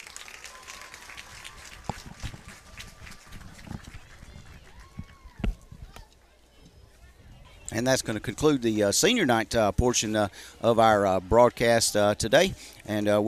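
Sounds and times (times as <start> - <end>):
large stadium crowd applauding at a school senior night: 0.0 - 5.7, 9.5 - 12.5
speech: 7.8 - 13.2.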